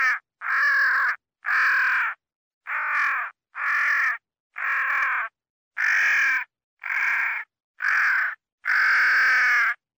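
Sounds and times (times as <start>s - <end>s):
crow cawing while fighting: 0.0s - 2.1s, 2.7s - 5.1s, 5.8s - 9.8s.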